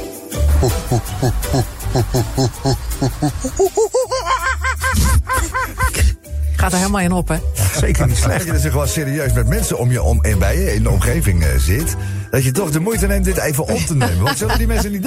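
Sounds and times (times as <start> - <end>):
person imitating monkey hoots and chatters: 0.5 - 5.3
laughter: 0.6 - 6.2, 13.7 - 15.0
speech: 0.6 - 15.0.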